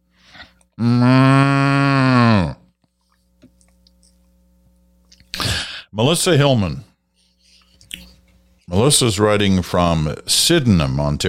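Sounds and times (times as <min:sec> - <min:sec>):
cow mooing: 0:00.8 - 0:02.6
speech: 0:06.0 - 0:06.9, 0:08.7 - 0:11.2.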